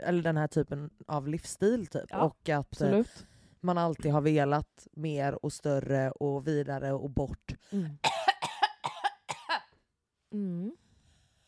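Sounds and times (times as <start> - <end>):
speech: 0.0 - 8.1, 10.3 - 10.8
woman coughing openly and unrestrained: 7.9 - 9.7.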